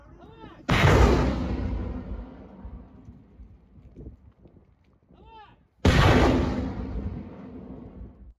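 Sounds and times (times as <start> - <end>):
rocket salvo fired from a launcher mounted on a pickup truck: 0.6 - 3.6, 5.8 - 8.3.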